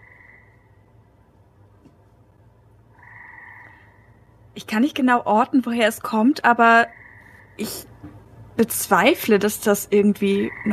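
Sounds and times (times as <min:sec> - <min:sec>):
frogs croaking in a buzzing chorus: 0:00.0 - 0:01.3, 0:02.8 - 0:04.5, 0:06.6 - 0:08.0, 0:10.2 - 0:10.7
faint low hum: 0:00.0 - 0:10.7
speech: 0:04.6 - 0:07.0, 0:07.6 - 0:07.9, 0:08.6 - 0:10.7.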